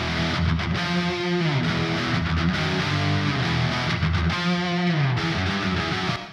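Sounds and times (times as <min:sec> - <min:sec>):
two distorted electric guitars with cross-panned reverb: 0:00.0 - 0:06.3.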